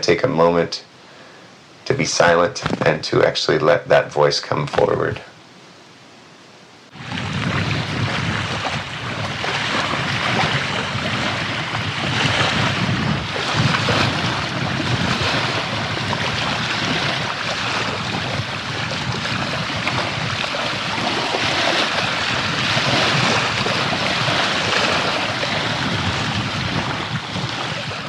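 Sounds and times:
speech: 0.0s - 0.9s, 1.9s - 5.3s
gusty wind buffeting: 6.9s - 28.0s
wind-driven waves of the Salish Sea washing onto a shore: 6.9s - 28.0s.

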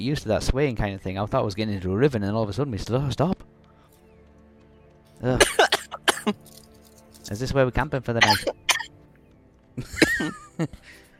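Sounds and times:
speech: 0.0s - 3.5s, 5.2s - 5.6s, 6.3s - 6.5s, 7.3s - 8.6s, 9.8s - 11.0s
person coughing: 5.4s - 6.4s, 8.2s - 8.9s
laughter: 9.8s - 11.0s.

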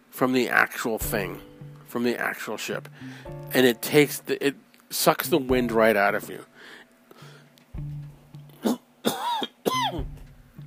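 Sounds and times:
speech: 0.2s - 6.8s
low steady hum: 1.0s - 10.6s
raspy coughs: 8.6s - 10.1s
throat clearing: 8.6s - 10.2s.

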